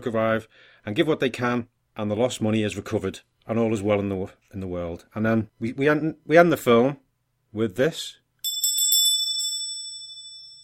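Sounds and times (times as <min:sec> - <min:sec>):
speech: 0:00.0 - 0:08.2
small bell ringing: 0:08.4 - 0:10.6.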